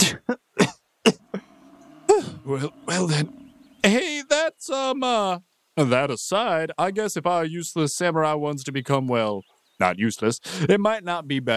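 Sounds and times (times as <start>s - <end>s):
person coughing: 0.0s - 1.5s
strained wheezy vocal sound: 1.1s - 3.4s
speech: 2.5s - 11.5s.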